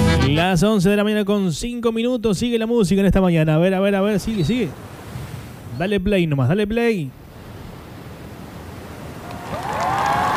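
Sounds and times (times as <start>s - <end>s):
speech: 0.4s - 4.9s, 5.8s - 7.2s
crowd applause: 9.2s - 10.3s.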